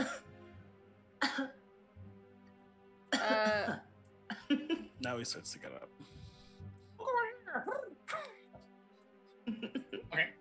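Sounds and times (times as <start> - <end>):
person coughing on purpose to get attention: 0.0 - 0.2, 3.2 - 3.8
speech: 1.3 - 1.6, 4.5 - 6.3, 9.5 - 10.3
laughter: 4.3 - 5.2, 9.5 - 10.1.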